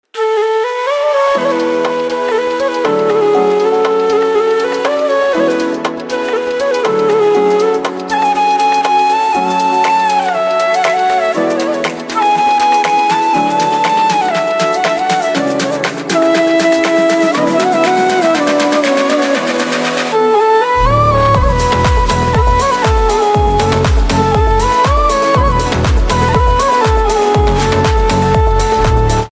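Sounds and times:
flute instrumental ringtone: 0:00.2 - 0:29.3.

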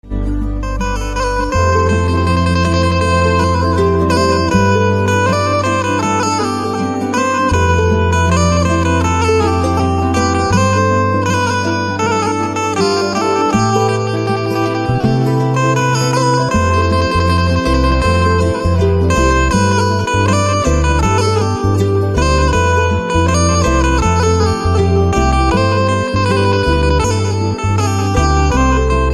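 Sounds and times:
banjo instrumental ringtone: 0:00.1 - 0:29.1.

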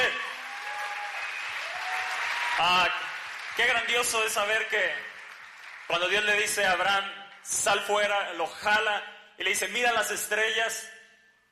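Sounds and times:
faint cheering or voices: 0:00.0 - 0:02.9
sustained applause from a large crowd: 0:00.0 - 0:06.8
speech: 0:02.6 - 0:03.0, 0:03.6 - 0:05.1, 0:05.9 - 0:11.0.

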